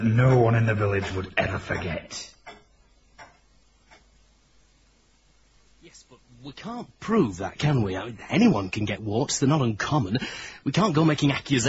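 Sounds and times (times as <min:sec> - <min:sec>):
speech: 0:00.0 - 0:02.4, 0:06.4 - 0:11.6
clock ticking: 0:00.0 - 0:04.2
faint hiss: 0:00.0 - 0:11.6.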